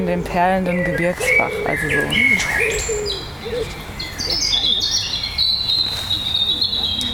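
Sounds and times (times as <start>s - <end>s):
speech: 0.0s - 4.9s
European robin singing: 0.0s - 7.1s.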